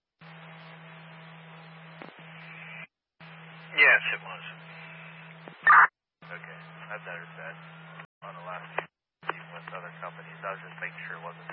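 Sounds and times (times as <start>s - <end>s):
speech: 3.8s - 4.5s
harsh radio static on a transmission: 3.8s - 7.6s, 8.2s - 11.5s.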